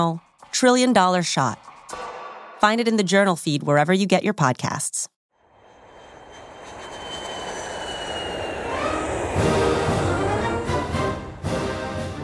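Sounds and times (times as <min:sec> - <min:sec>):
speech: 0:00.0 - 0:02.0, 0:02.6 - 0:05.1
jet airplane taxiing along a runway in brisk Ohio air: 0:05.5 - 0:12.2.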